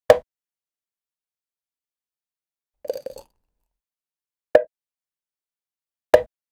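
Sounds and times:
cap popping off: 2.9 - 3.3.

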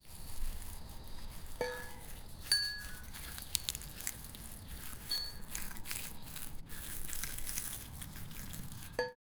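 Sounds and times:
tofu slicing rustling: 0.0 - 9.0.

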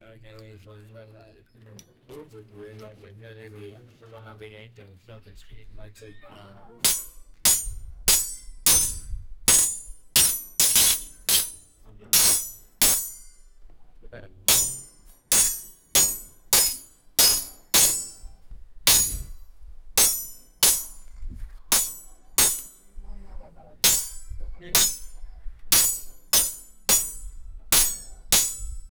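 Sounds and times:
background conversation: 0.0 - 8.0, 11.8 - 14.5, 21.3 - 25.7
swords swinging: 6.9 - 11.6, 12.2 - 13.3, 14.5 - 18.3, 18.9 - 19.4, 20.0 - 21.0, 21.7 - 22.8, 23.8 - 25.1, 25.7 - 28.9.

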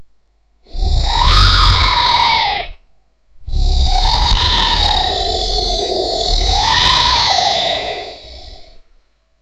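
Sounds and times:
loud aggressive dragon sound: 0.7 - 2.8, 3.5 - 8.8.

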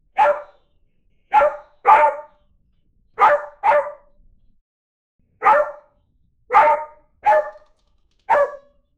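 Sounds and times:
dog barking: 0.1 - 0.6, 1.3 - 2.4, 3.2 - 4.2, 5.4 - 5.9, 6.5 - 7.7, 8.3 - 8.8.

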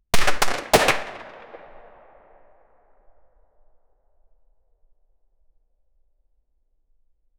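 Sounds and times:
SP5A3 9mm gunshot: 0.2 - 2.2.

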